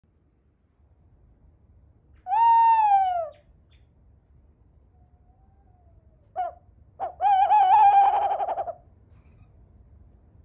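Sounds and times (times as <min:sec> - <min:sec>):
Western screech owl calling in desert: 0:02.3 - 0:03.8, 0:06.4 - 0:08.8.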